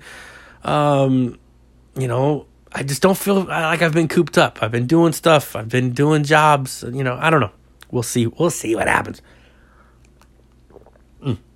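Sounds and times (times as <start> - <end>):
speech: 0.6 - 1.4, 2.0 - 9.4, 11.2 - 11.5
person sipping iced tea: 9.9 - 11.5
faint mouth noises: 10.0 - 11.5
short gulping swallow: 10.6 - 11.5.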